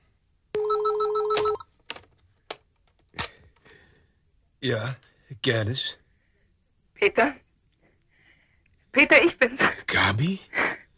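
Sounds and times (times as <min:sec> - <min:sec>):
steady telephone tone: 0:00.6 - 0:01.7
speech: 0:04.6 - 0:06.0, 0:07.0 - 0:07.4, 0:09.0 - 0:10.8.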